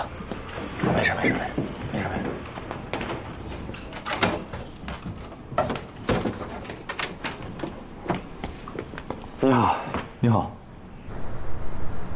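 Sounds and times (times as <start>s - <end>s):
keys jangling and clicking at a door lock: 0.0s - 8.1s
speech: 0.8s - 1.6s, 9.5s - 10.6s.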